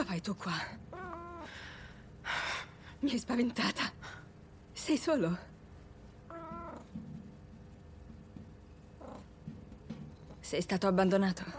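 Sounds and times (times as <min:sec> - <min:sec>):
low steady rumble: 0:00.0 - 0:11.5
speech: 0:00.2 - 0:01.6, 0:03.0 - 0:04.0, 0:04.8 - 0:05.5, 0:10.5 - 0:11.5
cat meowing: 0:00.9 - 0:01.5, 0:06.3 - 0:07.0.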